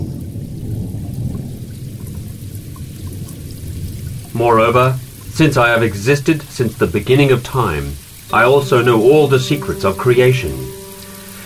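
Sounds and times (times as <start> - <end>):
deep rolling rumble of thunder: 0.0 - 8.3
steady dense pouring rain: 0.0 - 11.4
speech: 4.4 - 10.7.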